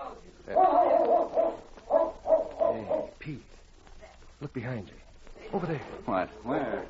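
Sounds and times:
speech: 0:00.5 - 0:00.8, 0:03.3 - 0:03.6, 0:04.4 - 0:06.8
Malamute sled dog barking and yipping: 0:00.5 - 0:03.2.

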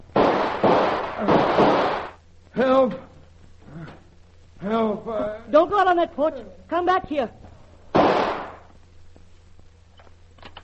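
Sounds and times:
gunshots in a radio drama: 0:00.1 - 0:02.2, 0:07.9 - 0:08.7
speech: 0:05.6 - 0:07.4.

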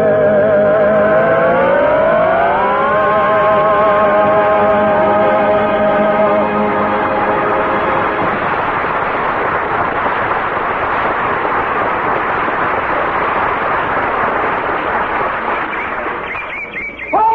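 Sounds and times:
car engine driving off into the woods: 0:00.0 - 0:16.6.

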